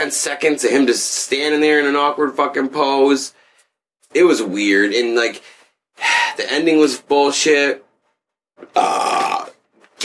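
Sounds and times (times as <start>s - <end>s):
speech: 0.0s - 3.4s, 4.1s - 7.8s, 8.6s - 9.1s
loud drawn-out burp: 8.7s - 9.6s.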